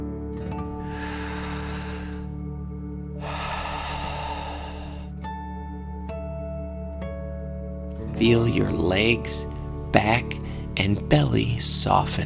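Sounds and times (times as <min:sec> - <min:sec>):
steady soft musical drone: 0:00.0 - 0:12.0
deep breathing in and out during a guided breathing exercise: 0:00.7 - 0:05.3, 0:10.4 - 0:10.8
speech: 0:08.2 - 0:12.2.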